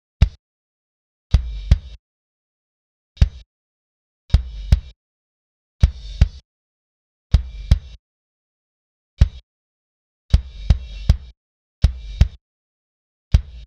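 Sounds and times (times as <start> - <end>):
modern kick drum: 1.3 - 2.0, 3.2 - 3.5, 4.3 - 5.0, 5.8 - 6.4, 7.3 - 8.0, 9.2 - 9.4, 10.3 - 12.4, 13.4 - 13.6.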